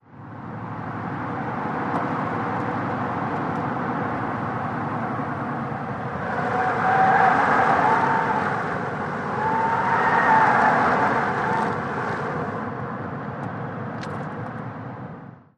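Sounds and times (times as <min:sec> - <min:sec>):
compact car cornering: 0:00.6 - 0:12.6.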